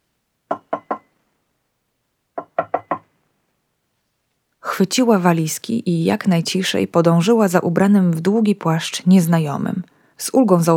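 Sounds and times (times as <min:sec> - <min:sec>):
soft knocking on a door: 0:00.5 - 0:01.1, 0:02.4 - 0:03.1
speech: 0:04.8 - 0:10.7.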